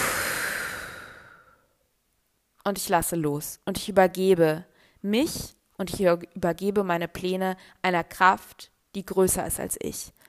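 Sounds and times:
person breathing out: 0.0 - 1.8
speech: 2.6 - 10.2.

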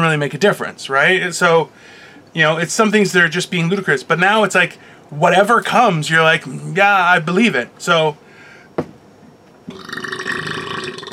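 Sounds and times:
speech: 0.0 - 8.2
long loud burp after eating a panzerotto: 9.7 - 11.1.

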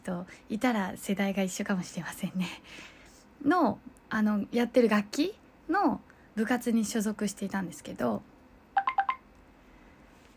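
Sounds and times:
speech: 0.1 - 8.3
messaging app notification chiming on a phone: 8.8 - 9.2.

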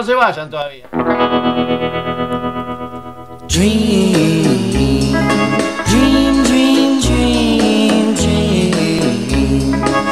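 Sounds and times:
speech: 0.0 - 2.1, 3.5 - 5.0
shimmering electric guitar chord with tremolo in a 1950s pop song: 0.9 - 10.1.

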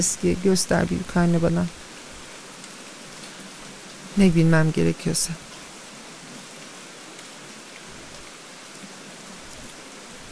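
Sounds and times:
speech: 0.0 - 1.8, 4.2 - 5.4
steady dense Amazon rainfall: 0.0 - 10.3.

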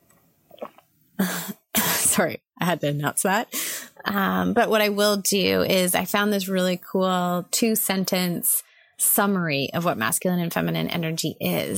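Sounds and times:
person sipping water: 0.5 - 1.0
speech: 2.2 - 11.7.

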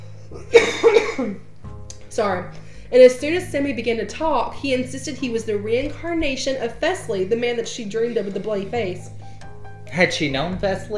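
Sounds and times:
harsh coughing fit: 0.3 - 1.5
speech: 1.2 - 1.5, 2.1 - 9.2, 9.9 - 10.9.

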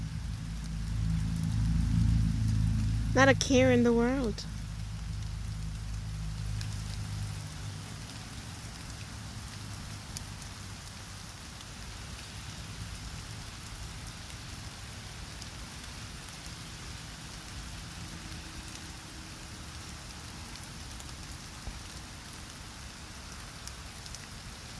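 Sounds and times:
soft low rumble: 0.0 - 7.8
steady rain falling: 0.0 - 24.7
speech: 3.2 - 4.6.

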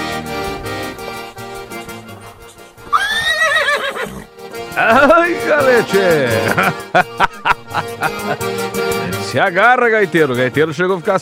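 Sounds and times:
dapple-grey horse neighing: 0.7 - 4.8
laughter: 4.8 - 9.3
speech: 4.8 - 11.2.

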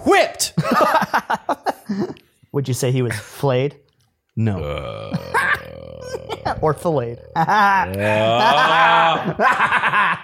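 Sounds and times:
speech: 0.1 - 1.0, 2.6 - 3.8, 4.4 - 10.2
toddler-like whiny mewl and whimpers: 4.6 - 9.3
laughter: 7.3 - 10.2.

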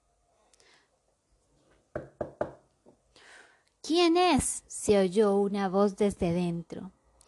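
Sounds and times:
soft hiss of noise: 0.0 - 7.2
firm loud knocking on a door: 1.9 - 2.6
speech: 3.8 - 7.0.

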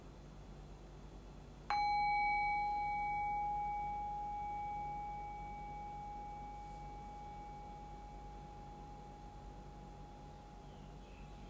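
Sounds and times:
bell struck during a guided meditation: 1.7 - 10.4.

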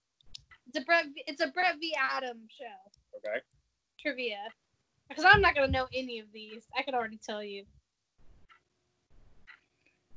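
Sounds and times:
speech: 0.7 - 7.8
clock ticking with dull thump and bright click: 5.2 - 7.0.

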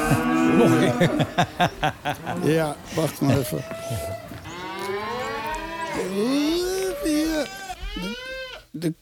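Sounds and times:
cow mooing: 0.0 - 1.3, 3.3 - 8.6
laughter: 0.0 - 4.2
speech: 0.1 - 4.3, 6.0 - 6.5, 8.8 - 9.0.

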